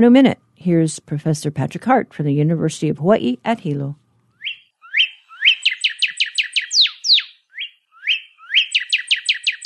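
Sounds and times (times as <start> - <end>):
speech: 0.0 - 4.0
northern cardinal singing whistled phrases: 4.4 - 9.6.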